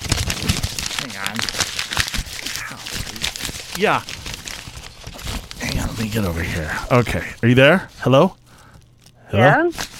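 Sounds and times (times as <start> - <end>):
wrapping paper crinkling and rustling as a person struggles in it: 0.0 - 9.9
speech: 3.8 - 4.2, 6.0 - 8.4, 9.3 - 9.9.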